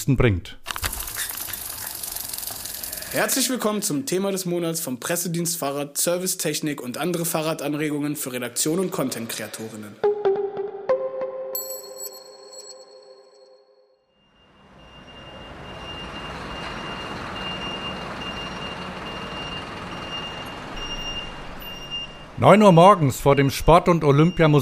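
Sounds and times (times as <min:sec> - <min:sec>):
speech: 0:00.0 - 0:00.8, 0:03.1 - 0:10.1, 0:22.4 - 0:24.5
ringing chime melody: 0:10.9 - 0:17.0
truck engine rumble pulling up to an entrance: 0:14.7 - 0:24.5.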